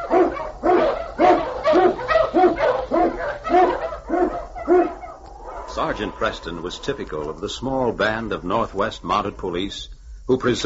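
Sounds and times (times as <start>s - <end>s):
pack of Eskimo husky sled dogs barking and yipping in snow: 0.0s - 6.3s
speech: 5.8s - 10.6s.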